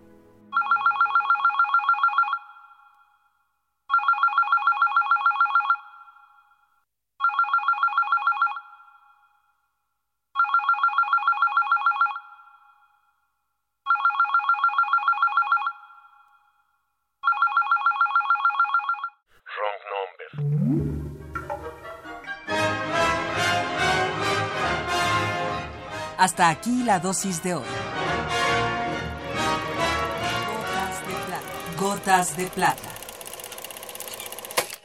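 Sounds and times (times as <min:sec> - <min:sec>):
music: 0:00.0 - 0:00.5, 0:20.4 - 0:32.7
electronic telephone ringing: 0:00.5 - 0:03.2, 0:03.9 - 0:06.6, 0:07.2 - 0:09.3, 0:10.4 - 0:12.8, 0:13.9 - 0:16.5, 0:17.2 - 0:19.2, 0:29.9 - 0:34.8
speech: 0:26.3 - 0:28.0, 0:32.0 - 0:33.0.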